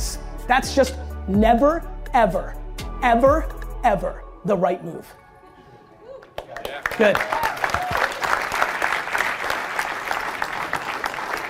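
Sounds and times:
speech: 0.5s - 5.2s, 7.0s - 7.4s
room full of people applauding: 6.2s - 11.4s.

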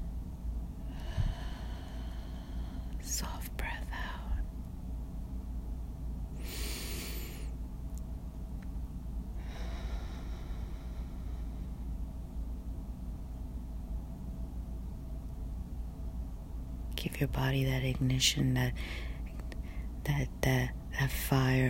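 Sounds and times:
steady low hiss: 0.0s - 21.6s
deep breathing in and out: 0.8s - 3.0s, 6.4s - 7.6s, 9.3s - 12.2s, 18.8s - 20.0s
speech: 17.0s - 19.1s, 20.2s - 21.6s.

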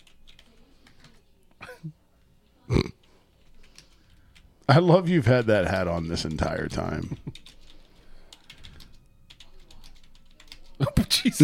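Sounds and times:
clicking keystrokes on a computer keyboard: 0.0s - 1.2s, 3.3s - 4.4s, 6.2s - 10.8s
low murmur: 0.0s - 4.7s, 7.5s - 10.9s
speech: 4.7s - 7.2s, 11.3s - 11.4s.

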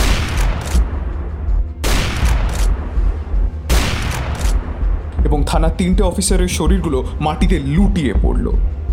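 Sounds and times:
suppressed sniper rifle gunshots: 0.0s - 1.0s, 1.8s - 3.0s, 3.7s - 4.9s
speech: 5.5s - 8.8s.

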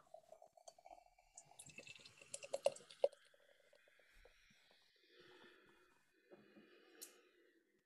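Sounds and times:
pale golden beer pouring into a glass: 0.0s - 3.8s.

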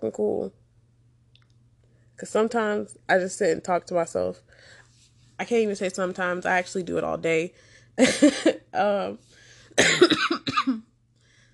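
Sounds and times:
speech: 0.0s - 0.6s, 2.2s - 4.8s, 5.4s - 10.8s
person coughing: 8.0s - 8.7s, 9.8s - 10.9s.

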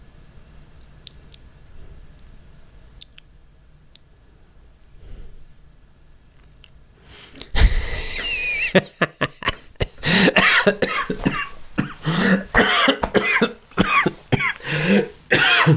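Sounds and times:
person laughing: 7.4s - 11.4s
harsh coughing of a person laughing: 7.4s - 15.7s
short gasps: 9.8s - 10.4s, 12.0s - 12.6s, 14.6s - 15.2s.

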